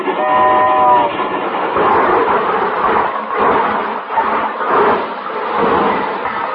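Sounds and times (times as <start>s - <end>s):
train horn blast: 0.0s - 1.1s
train rumbling and clattering along the rails: 0.0s - 6.5s.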